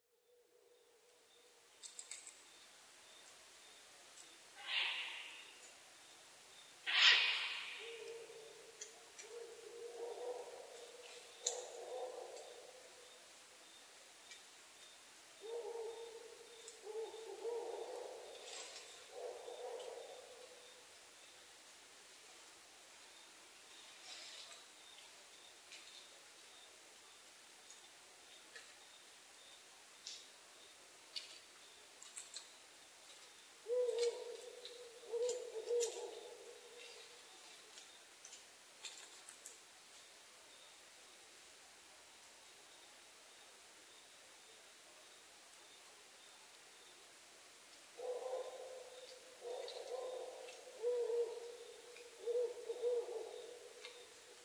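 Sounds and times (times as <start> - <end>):
owl: 4.6 - 5.7, 6.8 - 12.8, 15.4 - 20.7, 33.6 - 37.2, 48.0 - 54.2.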